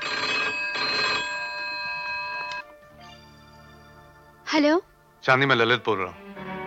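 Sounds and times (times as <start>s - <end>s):
telephone ringing: 0.0s - 4.4s
speech: 4.5s - 6.2s.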